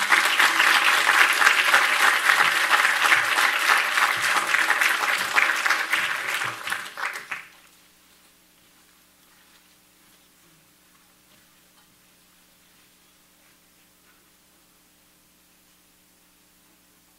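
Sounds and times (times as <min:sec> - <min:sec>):
applause from a sizable audience: 0:00.0 - 0:07.6.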